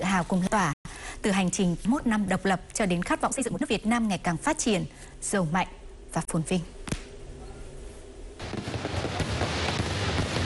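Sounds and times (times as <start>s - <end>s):
speech: 0.1s - 6.8s
fireworks exploding at an independence celebration display in Hanoi: 8.4s - 10.4s.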